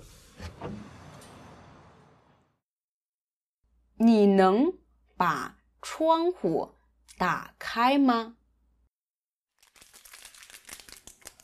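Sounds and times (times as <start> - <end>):
speech: 4.0 - 8.4
coffee packaging being torn open: 9.6 - 11.4.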